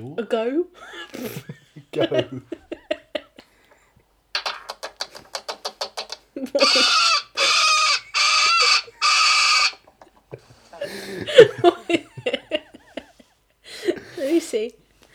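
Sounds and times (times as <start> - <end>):
speech: 0.0 - 2.7, 6.4 - 7.1, 14.5 - 14.8
laughter: 0.8 - 3.4, 9.7 - 14.2
parrot squawking outdoors: 4.4 - 10.7.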